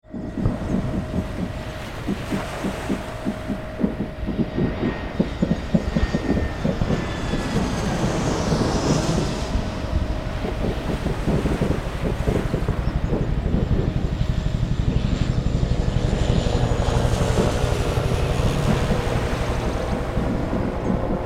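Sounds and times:
aircraft taking off from a naval ship: 0:00.0 - 0:21.2
naval ship ambience: 0:00.0 - 0:21.2.

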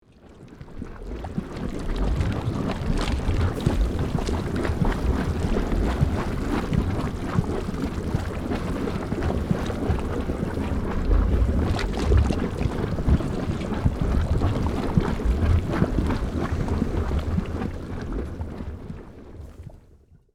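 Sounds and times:
lava lake bubbling magma in a volcano: 0:00.0 - 0:20.2.

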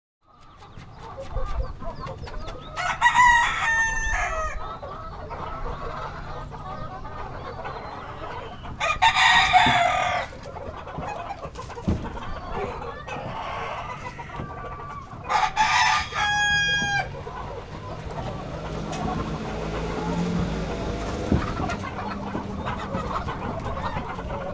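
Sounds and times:
distant village rooster crowing: 0:02.7 - 0:04.9, 0:07.8 - 0:10.4, 0:12.0 - 0:24.5.

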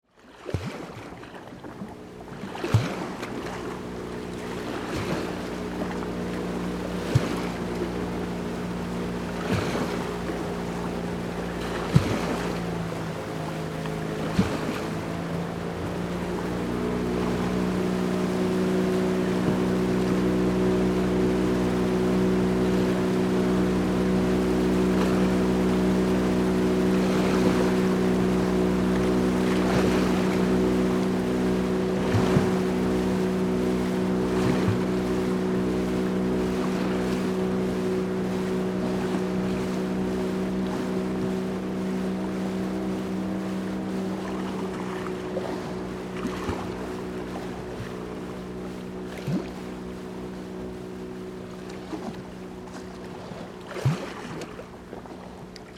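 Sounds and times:
gentle waves breaking on a beach: 0:00.0 - 0:55.7
motorboat passing slowly: 0:00.0 - 0:55.7.

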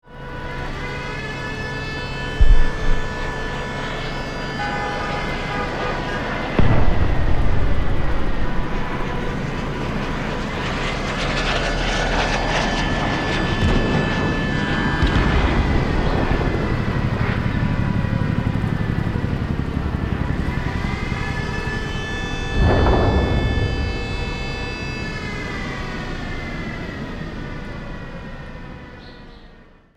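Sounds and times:
city emergency sirens: 0:00.0 - 0:29.9
explosions: 0:02.4 - 0:03.5, 0:06.6 - 0:12.3, 0:15.0 - 0:17.5, 0:22.4 - 0:25.6.

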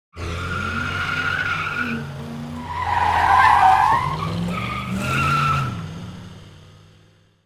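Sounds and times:
car tire skidding fast on asphalt with squeal: 0:00.2 - 0:06.0.

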